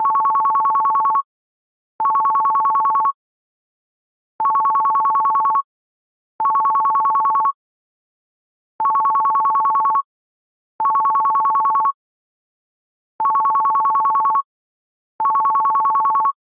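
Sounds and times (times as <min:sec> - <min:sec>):
simple bell ringtone on LG G Pro 2 D838 phone: 0:00.0 - 0:01.2, 0:02.0 - 0:03.2, 0:04.4 - 0:05.7, 0:06.4 - 0:07.6, 0:08.8 - 0:10.0, 0:10.8 - 0:12.0, 0:13.2 - 0:14.5, 0:15.2 - 0:16.4.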